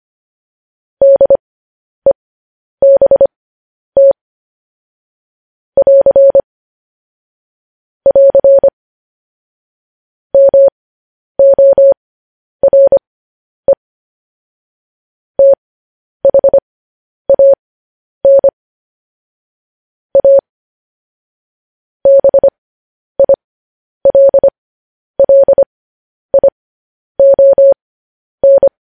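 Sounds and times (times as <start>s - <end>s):
Morse code tapped out as a single steady tone: 1.0s - 1.4s, 2.8s - 3.3s, 4.0s - 4.2s, 5.8s - 6.4s, 8.1s - 8.7s, 10.4s - 10.7s, 11.4s - 12.0s, 12.6s - 13.0s, 15.4s - 15.6s, 16.2s - 16.6s, 17.3s - 17.6s, 18.2s - 18.5s, 20.2s - 20.4s, 22.1s - 22.6s, 23.2s - 23.4s, 24.0s - 24.6s, 25.2s - 25.7s, 26.3s - 26.6s, 27.2s - 27.8s, 28.4s - 28.7s.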